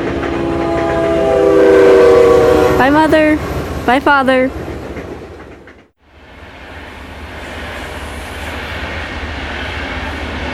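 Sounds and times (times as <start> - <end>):
train to Seattle rumbling along the tracks: 0.0 - 10.5
speech: 2.9 - 4.6.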